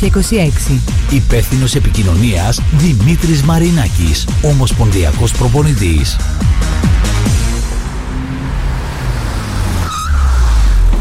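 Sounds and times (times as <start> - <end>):
speech: 0.0 - 7.4
car engine roaring and revving: 0.8 - 10.9
brief high squeal: 9.5 - 10.9.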